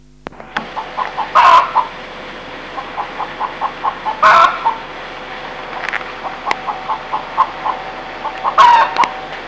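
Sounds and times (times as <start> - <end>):
chicken: 0.8 - 1.9, 2.8 - 4.8, 6.2 - 9.2.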